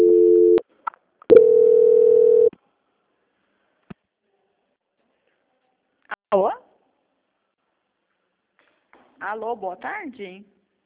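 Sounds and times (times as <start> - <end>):
steady mid-pitched telephone tone during a call transfer: 0.0 - 0.6, 1.3 - 2.5
speech: 6.3 - 6.6, 9.2 - 10.6.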